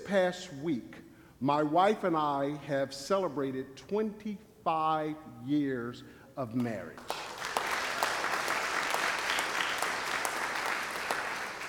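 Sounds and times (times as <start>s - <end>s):
speech: 0.1s - 7.2s
crowd applauding: 7.0s - 11.6s.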